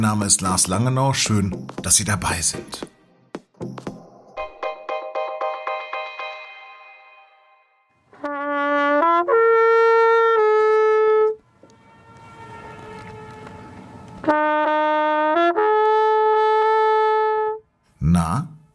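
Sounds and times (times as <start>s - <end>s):
speech: 0.0s - 3.0s
trumpet playing sustained bright notes: 4.9s - 17.6s
delayed trumpet echo across an alpine lake: 6.3s - 17.6s.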